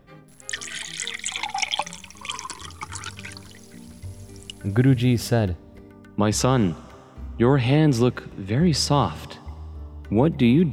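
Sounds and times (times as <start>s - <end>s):
water pouring into a glass: 0.3s - 5.3s
speech: 4.6s - 5.6s, 6.2s - 6.8s, 7.4s - 9.3s, 10.1s - 10.7s.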